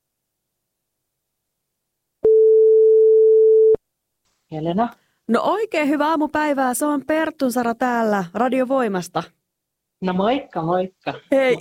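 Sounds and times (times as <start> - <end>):
telephone ringing tone while placing a call: 2.2 - 3.8
speech: 4.5 - 9.4, 10.0 - 11.5.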